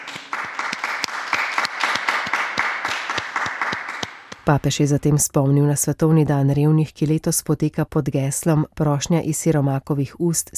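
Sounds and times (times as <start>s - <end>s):
large crowd applauding: 0.0s - 4.5s
sharp individual claps: 0.0s - 4.5s
speech: 4.5s - 10.5s.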